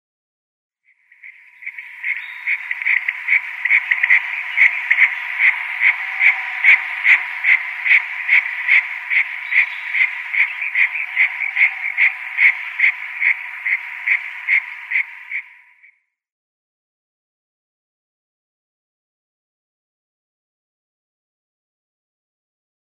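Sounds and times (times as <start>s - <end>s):
female Red-necked Nightjar display call: 0.9s - 15.9s.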